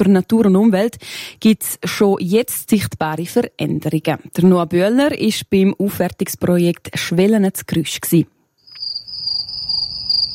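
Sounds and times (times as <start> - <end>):
speech: 0.0 - 8.4
crickets chirping in a restored meadow near Grüsch: 8.5 - 10.3.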